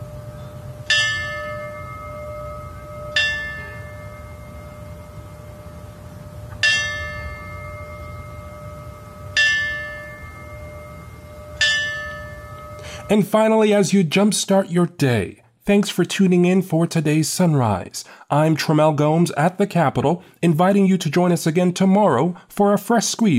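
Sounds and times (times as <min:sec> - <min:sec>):
low rumble: 0:00.0 - 0:13.2
ceremonial memorial bell struck for fallen firefighters: 0:00.4 - 0:05.7, 0:06.5 - 0:13.3
speech: 0:13.1 - 0:23.3.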